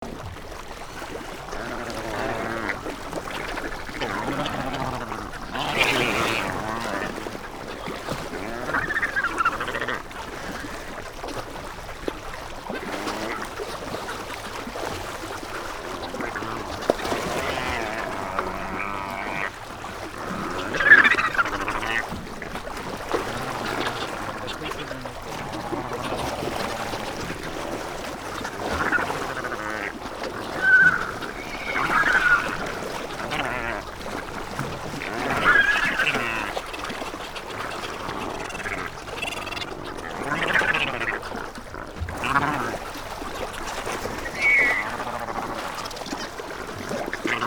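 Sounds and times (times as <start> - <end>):
wandering albatross: 0.9 - 47.4.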